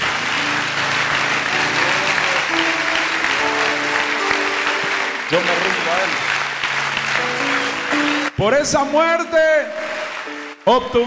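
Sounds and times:
audience applause at a religious gathering: 0.0 - 11.0
speech: 8.4 - 9.9, 10.6 - 11.0.

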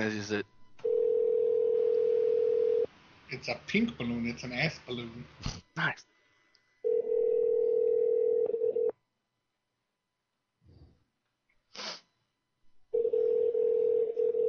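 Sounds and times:
speech: 0.0 - 0.6, 3.3 - 6.1
telephone ringback tones during a prank call: 0.8 - 2.9, 6.8 - 8.9, 12.9 - 14.4
snort-like burst: 11.7 - 12.1.

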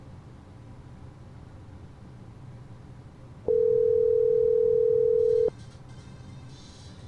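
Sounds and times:
telephone ringing tone heard by the caller in a video game: 3.5 - 5.5.

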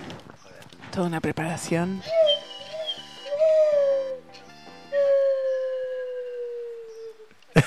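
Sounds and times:
speech: 1.0 - 2.2
person imitating a dog whimpering and howling using a plunger: 2.1 - 4.2, 5.0 - 7.3.

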